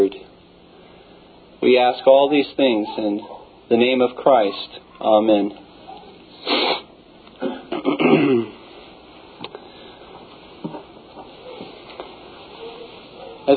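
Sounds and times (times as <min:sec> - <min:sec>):
speech: 0:01.6 - 0:05.6
person clearing their throat: 0:07.4 - 0:08.6
person coughing: 0:07.4 - 0:08.6.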